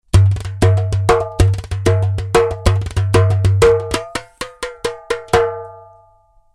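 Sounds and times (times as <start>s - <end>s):
steel darbuka: 0.0s - 6.2s.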